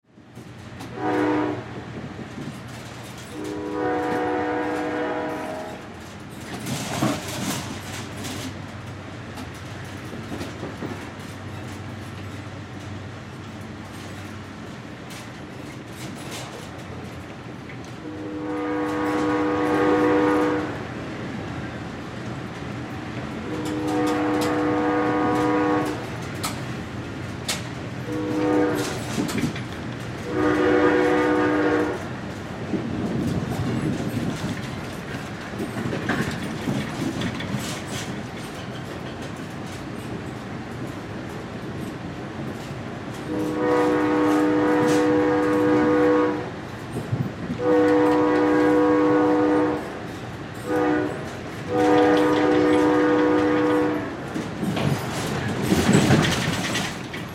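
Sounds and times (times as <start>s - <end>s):
train passenger interior ride rattle: 0.0s - 57.3s
train whistle blowing: 0.9s - 1.7s, 3.3s - 5.8s, 18.0s - 20.8s, 23.4s - 26.0s, 28.1s - 29.1s, 30.2s - 32.0s, 43.3s - 46.5s, 47.6s - 49.9s, 50.6s - 54.1s.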